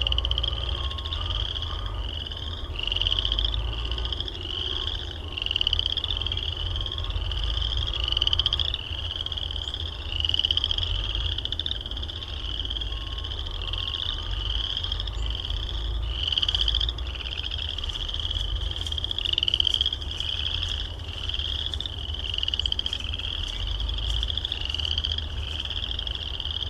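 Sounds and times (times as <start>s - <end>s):
constant low rumble: 0.0s - 26.6s
frogs calling with short rising high chirps: 0.0s - 26.6s.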